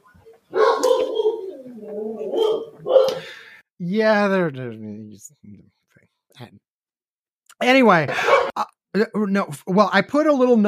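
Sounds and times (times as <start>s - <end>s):
dog barking in drawn-out whining bursts: 0.2s - 3.2s
speech: 3.9s - 5.6s, 6.4s - 6.6s, 7.6s - 10.6s.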